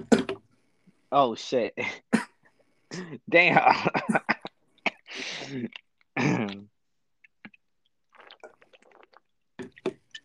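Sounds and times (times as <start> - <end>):
speech: 1.1 - 2.1, 2.9 - 4.3, 5.2 - 6.7
person coughing and clearing throat after smoking: 2.1 - 2.4, 3.9 - 6.6
small mouth noises: 4.1 - 9.2.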